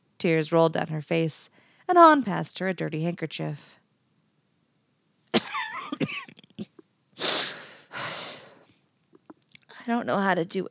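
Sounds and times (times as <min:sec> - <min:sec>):
speech: 0:00.2 - 0:03.8, 0:09.9 - 0:10.6
person choking and coughing after gulping a strong-smelling drink: 0:05.3 - 0:06.8.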